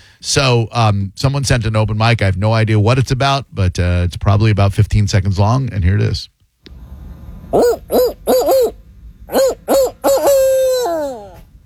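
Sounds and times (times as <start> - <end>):
speech: 0.2 - 6.3, 7.5 - 10.0
person imitating a barred owl's hooting call: 7.6 - 11.5.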